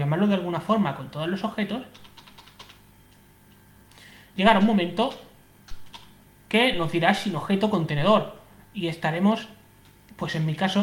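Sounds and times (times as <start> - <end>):
low steady hum: 0.0 - 10.8
speech: 0.1 - 2.1, 4.4 - 5.3, 6.5 - 9.6, 10.2 - 10.8
computer keyboard key presses: 2.0 - 2.8.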